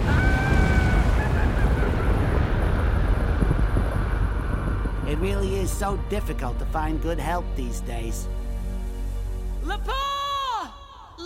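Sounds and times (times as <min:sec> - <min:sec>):
avalanche thundering down a mountain: 0:00.0 - 0:09.6
speech: 0:05.4 - 0:08.4, 0:09.6 - 0:10.1.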